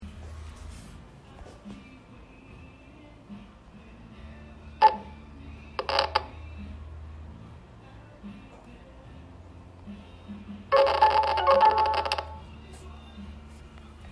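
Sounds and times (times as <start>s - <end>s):
alarm: 10.7s - 12.4s.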